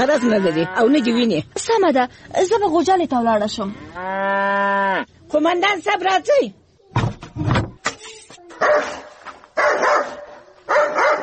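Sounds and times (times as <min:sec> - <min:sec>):
speech: 0:00.0 - 0:07.0
dog barking: 0:08.6 - 0:11.2.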